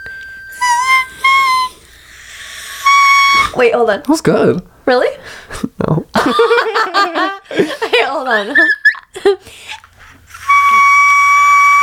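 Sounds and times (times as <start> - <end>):
singer straining for a whistle-register note: 0.0 - 3.6, 8.6 - 9.0, 10.3 - 11.8
quiet room hiss: 0.0 - 8.5, 9.1 - 11.8
speech: 3.6 - 9.7
laughter: 6.2 - 9.5.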